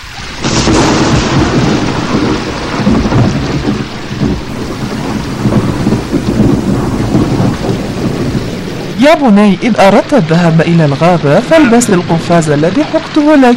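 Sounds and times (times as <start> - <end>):
heavy rain pouring: 0.0 - 13.5
deep rumbling roar: 0.4 - 9.0
speech: 9.0 - 13.5.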